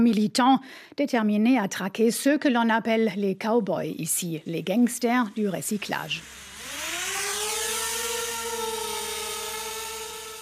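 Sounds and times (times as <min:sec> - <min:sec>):
speech: 0:00.0 - 0:06.5
small drone with high-pitched buzzing motors flying: 0:05.2 - 0:10.4.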